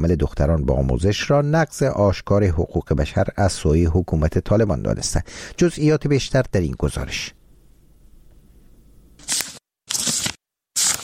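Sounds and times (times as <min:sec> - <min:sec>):
speech: 0:00.0 - 0:07.4
faint low hum: 0:03.4 - 0:09.2
girl in Afghanistan turning the pages of her books: 0:09.2 - 0:11.0.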